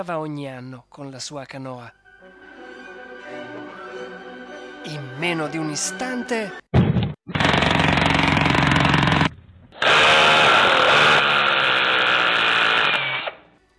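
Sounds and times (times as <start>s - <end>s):
speech: 0.0s - 2.0s, 4.9s - 6.8s
harsh jackhammer-like drilling: 7.3s - 13.4s.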